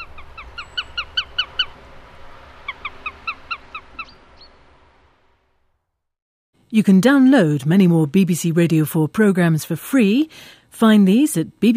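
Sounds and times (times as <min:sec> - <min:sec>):
sparrowhawk calling: 0:00.0 - 0:01.8, 0:02.6 - 0:04.6
speech: 0:06.7 - 0:11.7.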